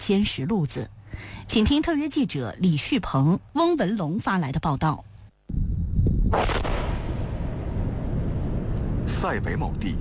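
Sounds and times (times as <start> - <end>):
speech: 0.0 - 5.7, 6.3 - 6.7, 9.2 - 9.9
missile striking and exploding: 6.3 - 8.7.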